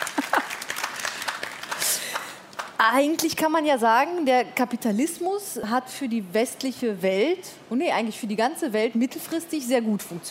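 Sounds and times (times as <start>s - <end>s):
audience clapping: 0.0s - 2.8s
speech: 2.8s - 10.2s.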